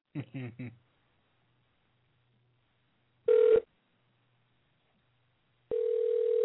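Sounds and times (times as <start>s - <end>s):
outgoing phone call electronic ring tone: 3.3s - 3.6s, 5.7s - 6.4s.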